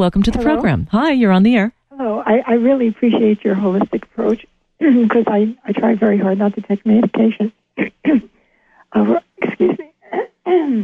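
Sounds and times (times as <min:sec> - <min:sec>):
speech: 0:00.0 - 0:10.8
rough throat clearing thick with morning mucus: 0:07.0 - 0:08.3, 0:09.0 - 0:10.8.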